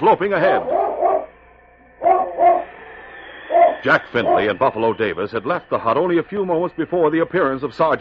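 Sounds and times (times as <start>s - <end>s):
speech: 0.0s - 0.8s, 3.8s - 7.9s
dog barking while chasing: 0.5s - 1.3s, 2.0s - 2.7s.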